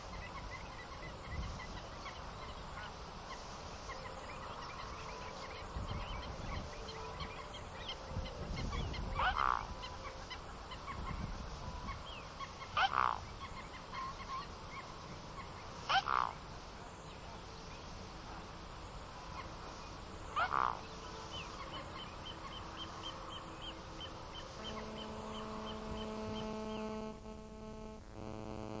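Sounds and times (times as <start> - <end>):
low background hiss: 0.0 - 28.7
mute swan honking calls: 4.0 - 14.8, 15.4 - 16.4, 20.2 - 28.0.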